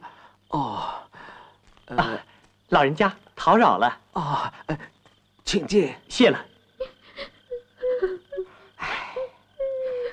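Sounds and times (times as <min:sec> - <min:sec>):
speech: 0:01.9 - 0:04.9, 0:05.5 - 0:06.5
mother crying in a dramatized scene: 0:06.8 - 0:10.1.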